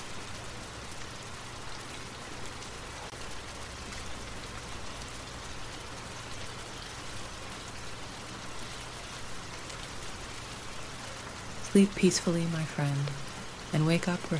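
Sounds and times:
steady rain pattering on a surface: 0.0 - 14.3
speech: 11.8 - 14.3.

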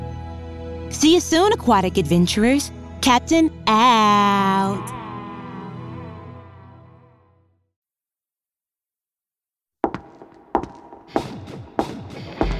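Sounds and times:
speech: 0.9 - 5.0
woman's high heels clacking on pavement: 9.8 - 12.5.

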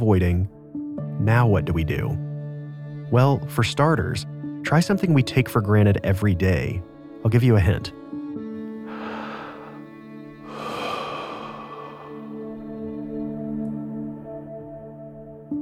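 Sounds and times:
speech: 0.0 - 0.6, 1.2 - 2.3, 3.1 - 8.0
slow deep breathing in and out: 8.8 - 13.1
soft steady musical drone: 8.8 - 15.5.

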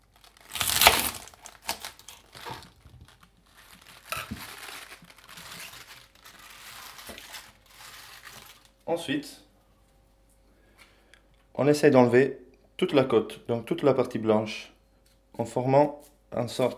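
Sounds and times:
knife cutting off the soil-filled base of a whole unwashed chard: 0.2 - 8.7
rustling of chard: 0.5 - 8.6
speech: 8.9 - 9.4, 11.6 - 14.7, 15.4 - 16.7.

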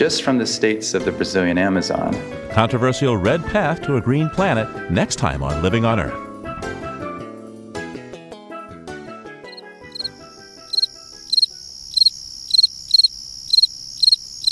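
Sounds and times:
speech: 0.0 - 6.8
fall field cricket chirping: 9.5 - 14.5.

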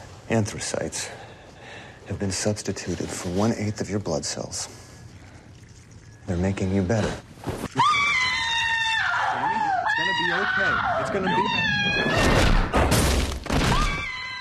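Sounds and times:
speech: 0.3 - 1.2, 2.1 - 4.9, 6.3 - 7.9, 10.2 - 12.6
woman screaming in a television series clip: 7.7 - 12.3, 13.7 - 14.3.

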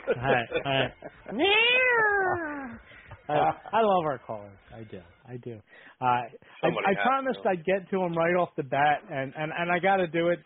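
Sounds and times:
laughter: 0.0 - 1.5
speech: 0.1 - 10.4
cat meowing: 1.3 - 2.8.

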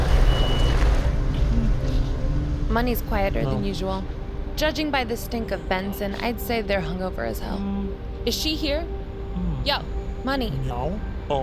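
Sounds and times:
heavy truck engine rumbling: 0.0 - 4.2
speech: 2.8 - 8.9, 9.6 - 11.4.

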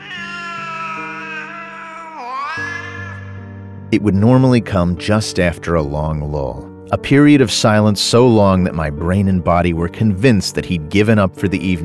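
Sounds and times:
cat crying and yowling in the evening: 0.0 - 3.4
speech: 3.9 - 11.8.

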